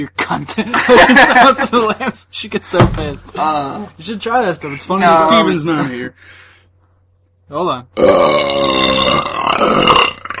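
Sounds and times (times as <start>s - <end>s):
speech: 0.0s - 6.5s, 7.5s - 10.0s
laughter: 0.4s - 2.2s
loud drawn-out burp: 8.0s - 10.3s.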